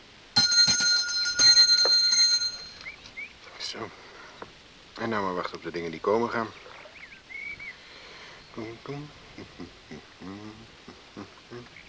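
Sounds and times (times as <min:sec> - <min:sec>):
hand bell on a landing pier post ringing: 0:00.4 - 0:02.8
speech: 0:03.8 - 0:04.1, 0:05.0 - 0:06.6, 0:08.6 - 0:11.8.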